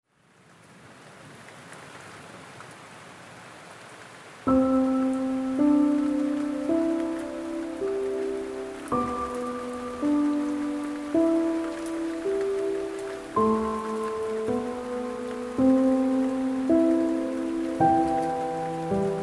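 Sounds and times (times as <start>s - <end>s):
rain: 0.0s - 19.2s
sleep music: 4.5s - 19.2s.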